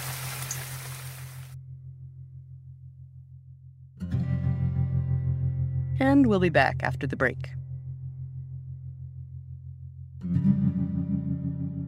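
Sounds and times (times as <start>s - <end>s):
heavy rain pouring off a roof: 0.0s - 1.5s
tonal musical passage: 1.5s - 11.8s
speech: 6.0s - 7.6s.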